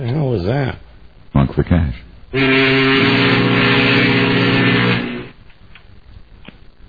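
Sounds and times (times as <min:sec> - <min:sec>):
speech: 0:00.0 - 0:03.4
boat engine droning: 0:02.4 - 0:05.4.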